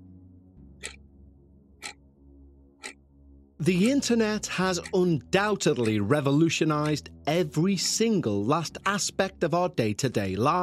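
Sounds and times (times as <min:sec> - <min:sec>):
clock ticking: 0:00.8 - 0:01.0, 0:01.8 - 0:02.0, 0:02.8 - 0:03.0, 0:03.6 - 0:07.1
speech: 0:03.6 - 0:10.6.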